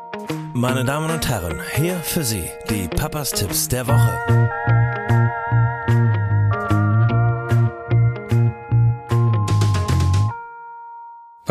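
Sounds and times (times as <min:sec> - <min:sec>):
speech: 0:00.2 - 0:04.8
bright segment jingle of bouncy staccato synth notes: 0:03.9 - 0:10.4
steady bass pulse: 0:04.2 - 0:10.3.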